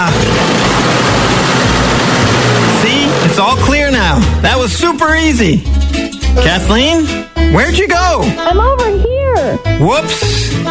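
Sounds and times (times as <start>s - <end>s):
snow blower engine running: 0.0s - 5.3s
speech: 3.6s - 10.6s.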